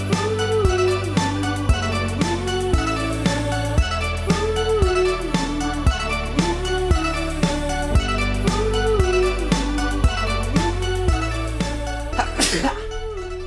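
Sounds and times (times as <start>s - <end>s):
mellow instrumental music: 0.0s - 13.4s
person sneezing: 12.2s - 12.9s.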